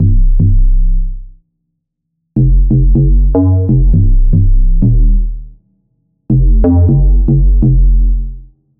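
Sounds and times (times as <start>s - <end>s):
bass synth: 0.0s - 1.4s, 2.4s - 5.6s, 6.3s - 8.6s.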